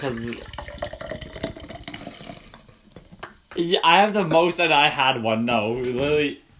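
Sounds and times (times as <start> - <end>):
speech: 0.0 - 0.6, 3.6 - 6.4
pink drink pouring into a glass: 0.0 - 3.2.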